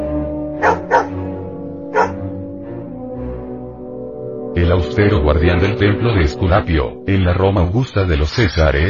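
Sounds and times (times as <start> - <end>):
dog barking: 0.6 - 2.3
speech: 4.7 - 8.8.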